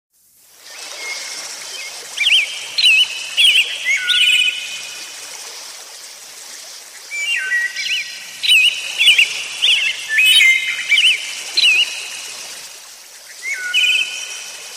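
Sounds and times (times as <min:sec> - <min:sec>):
bird giving bright high chirps with quick inflections: 0:01.8 - 0:04.8, 0:07.2 - 0:12.2, 0:13.4 - 0:14.4.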